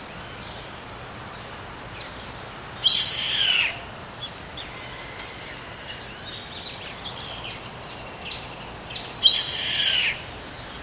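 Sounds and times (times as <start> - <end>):
steady background hiss: 0.0 - 10.8
bird high calls: 2.8 - 10.8.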